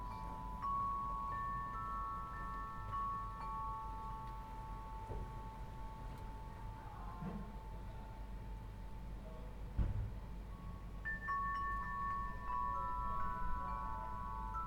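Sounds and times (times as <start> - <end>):
wind chimes ringing: 0.0 - 9.2, 10.2 - 14.6
soft knock: 9.8 - 10.2.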